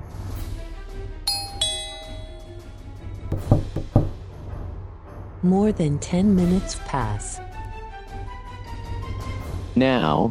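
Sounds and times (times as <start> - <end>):
two-note ding-dong doorbell at the front door of a home: 1.3 - 2.8
sharp knocks on the front door: 3.3 - 4.4
speech: 5.4 - 7.5, 9.8 - 10.2.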